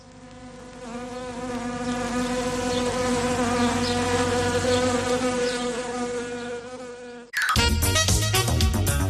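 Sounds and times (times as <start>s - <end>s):
wasps buzzing: 0.0s - 8.0s
music: 7.4s - 9.0s.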